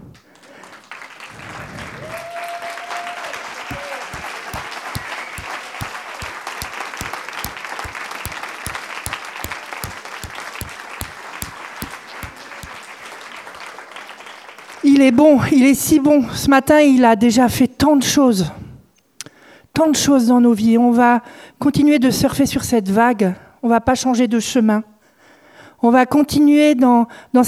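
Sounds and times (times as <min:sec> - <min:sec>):
church congregation standing and clapping in unison: 0:00.0 - 0:15.2
speech: 0:15.0 - 0:18.6, 0:19.8 - 0:24.9, 0:25.8 - 0:27.4.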